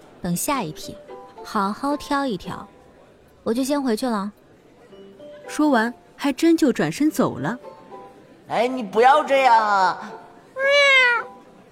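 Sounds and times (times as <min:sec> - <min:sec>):
speech: 0:00.2 - 0:02.8, 0:03.4 - 0:04.4, 0:05.5 - 0:07.7, 0:08.5 - 0:10.2
long drawn-out cat meow: 0:10.6 - 0:11.4.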